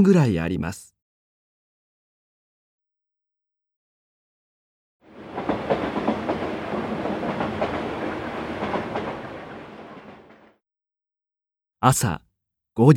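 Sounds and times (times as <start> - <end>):
speech: 0.0 - 0.9, 11.8 - 12.2, 12.8 - 12.9
train rumbling on rails with wheels clacking: 5.1 - 10.6.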